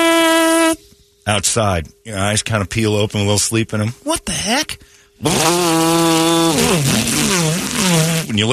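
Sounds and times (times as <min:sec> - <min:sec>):
speech: 0:01.3 - 0:08.5
two-stroke weed eater engine running during yard work: 0:05.2 - 0:08.4.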